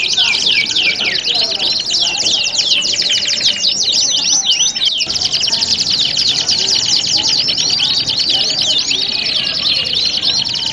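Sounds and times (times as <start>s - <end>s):
standard canaries singing in a dense chorus: 0.0s - 10.7s.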